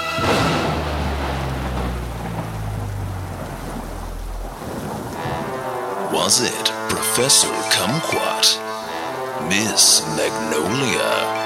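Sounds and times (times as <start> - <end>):
deep rolling thunder: 0.0 - 6.2
steady downpour of rain: 0.0 - 11.4
speech: 6.3 - 8.6, 9.5 - 11.4.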